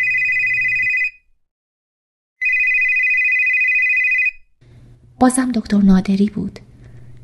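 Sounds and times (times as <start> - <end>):
mobile phone ringing: 0.0 - 1.3, 2.4 - 4.5
speech: 5.2 - 6.7.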